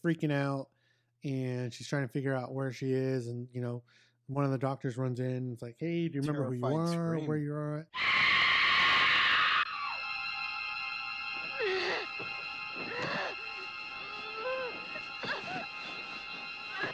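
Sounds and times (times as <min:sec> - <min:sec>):
speech: 0:00.0 - 0:08.4
woman screaming in a movie clip: 0:08.0 - 0:10.1, 0:14.1 - 0:15.8
steady high electronic hum: 0:09.2 - 0:16.9.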